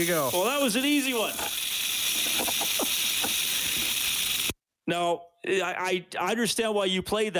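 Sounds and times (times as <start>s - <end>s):
speech: 0.0s - 1.6s, 2.3s - 3.4s, 4.9s - 7.3s
rattlesnake dry buzzing rattle: 0.0s - 4.6s.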